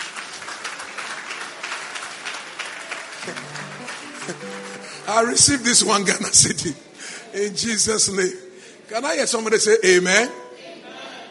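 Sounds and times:
audience clapping at a church service: 0:00.0 - 0:06.4
speech: 0:03.2 - 0:03.6, 0:04.3 - 0:10.4.

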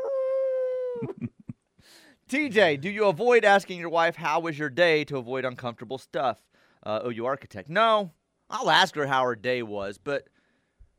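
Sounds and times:
dog howling: 0:00.0 - 0:01.0
speech: 0:01.0 - 0:10.3.

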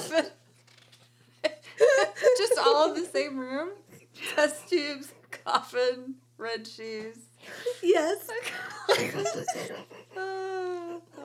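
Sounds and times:
steady hum: 0:00.0 - 0:11.2
speech: 0:02.8 - 0:03.8, 0:04.4 - 0:10.6
rough chesty cough from a person with a cold: 0:08.9 - 0:10.1.

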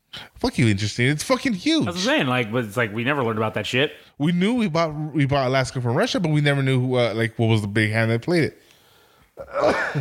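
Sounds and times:
speech: 0:00.4 - 0:08.6, 0:09.4 - 0:10.0
loud sneeze: 0:09.4 - 0:10.0.

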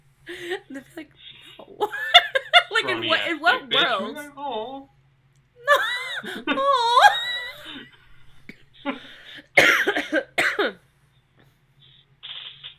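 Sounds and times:
speech: 0:00.3 - 0:02.0, 0:03.0 - 0:04.9, 0:05.7 - 0:07.8
person coughing: 0:09.5 - 0:10.8.

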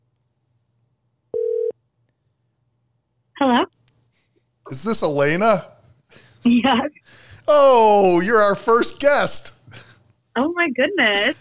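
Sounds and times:
quiet phone line hum: 0:01.3 - 0:01.7
speech: 0:04.7 - 0:05.7, 0:06.4 - 0:09.8, 0:10.4 - 0:11.3.

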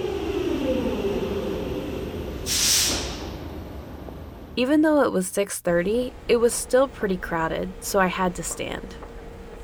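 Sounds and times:
train rolling into station with low rumble: 0:00.0 - 0:09.6
train air-brake hiss: 0:02.4 - 0:03.4
speech: 0:04.6 - 0:09.1.

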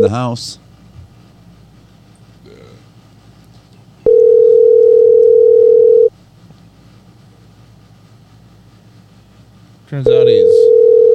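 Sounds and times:
speech: 0:00.0 - 0:00.6, 0:09.9 - 0:11.0
quiet hum: 0:00.0 - 0:11.1
electronic ring tone of outgoing phone call: 0:04.1 - 0:06.1, 0:10.2 - 0:11.1.

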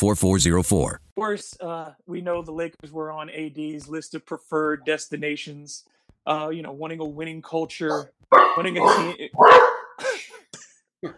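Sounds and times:
speech: 0:00.0 - 0:10.3
dog barking in sharp yaps: 0:07.9 - 0:10.0.

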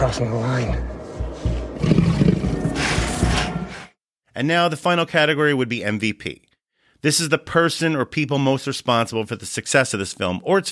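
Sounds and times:
speech: 0:00.0 - 0:01.0, 0:04.4 - 0:06.4, 0:07.0 - 0:10.6
zombie tiger roaring: 0:01.8 - 0:03.3.

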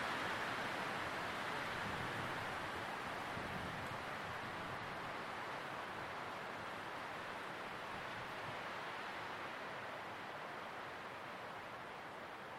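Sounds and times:
wind rustling through tree leaves: 0:00.0 - 0:12.5.

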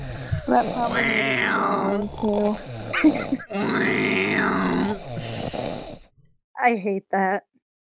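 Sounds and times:
loud snoring: 0:00.0 - 0:06.2
rumbling breath: 0:00.0 - 0:06.2
speech: 0:00.5 - 0:05.6, 0:06.6 - 0:07.5.

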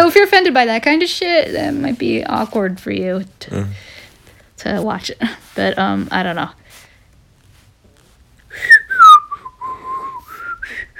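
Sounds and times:
speech: 0:00.1 - 0:04.0, 0:04.6 - 0:06.6, 0:08.5 - 0:08.7
person whistling a short aimless tune: 0:08.5 - 0:10.9.

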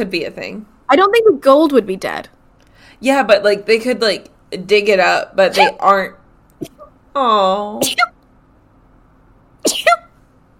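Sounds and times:
speech: 0:00.0 - 0:08.1
person sneezing: 0:07.8 - 0:08.1, 0:09.6 - 0:10.2.

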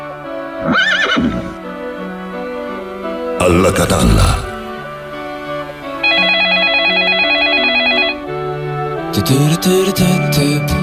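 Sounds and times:
speech: 0:00.6 - 0:01.6, 0:03.4 - 0:04.5, 0:09.2 - 0:10.8
telephone ringing with a warbling electronic trill: 0:06.0 - 0:08.5.

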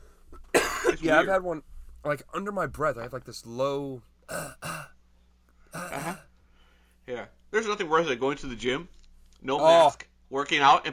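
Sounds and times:
low rough throat-clearing coughs: 0:00.4 - 0:01.1, 0:04.3 - 0:05.0, 0:05.7 - 0:06.3
speech: 0:01.0 - 0:04.6, 0:07.1 - 0:10.9.

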